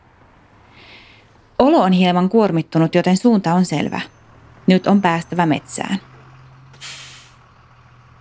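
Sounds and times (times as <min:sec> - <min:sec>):
bus engine idling on a partly cloudy afternoon in Lauttasaari Helsinki: 0:00.0 - 0:08.1
speech: 0:01.6 - 0:06.1
bus air brake hiss in Lauttasaari Helsinki: 0:06.8 - 0:07.4.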